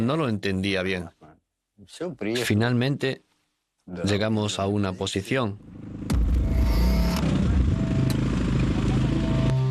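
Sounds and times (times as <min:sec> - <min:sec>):
speech: 0:00.0 - 0:01.2, 0:01.8 - 0:03.3, 0:03.9 - 0:06.0
motorcycle engine running: 0:05.6 - 0:09.6.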